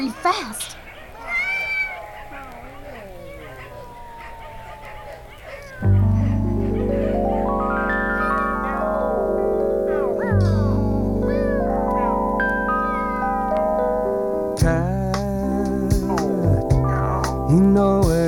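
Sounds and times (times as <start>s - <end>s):
speech: 0.0s - 0.8s
several cats meowing and yowling: 0.8s - 14.4s
loud sustained musical tone: 5.8s - 18.2s.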